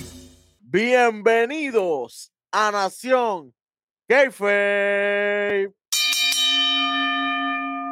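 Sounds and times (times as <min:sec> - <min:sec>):
speech: 0:00.7 - 0:05.8
bell ringing with sustained metallic tone: 0:05.9 - 0:07.8.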